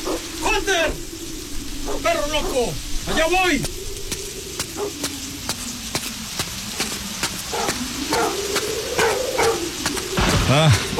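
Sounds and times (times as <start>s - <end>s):
dog barking at a grave: 0.0s - 0.2s, 1.8s - 3.2s, 4.8s - 5.0s, 7.5s - 9.7s
steady crackling patter: 0.0s - 10.9s.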